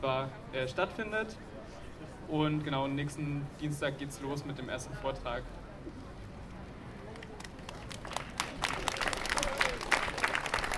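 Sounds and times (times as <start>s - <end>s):
speech: 0.0s - 6.0s
crowd applauding in a room: 7.2s - 10.7s.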